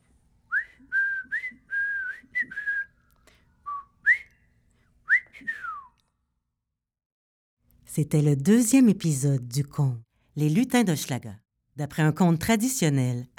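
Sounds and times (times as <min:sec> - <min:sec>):
man whistling a short lilting tune while walking: 0:00.5 - 0:04.5, 0:05.1 - 0:06.1
speech: 0:08.0 - 0:13.3.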